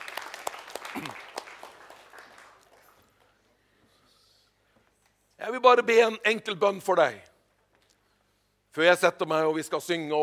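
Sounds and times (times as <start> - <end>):
congregation applauding: 0.0 - 3.5
speech: 1.0 - 1.2, 5.5 - 7.3, 8.8 - 10.2.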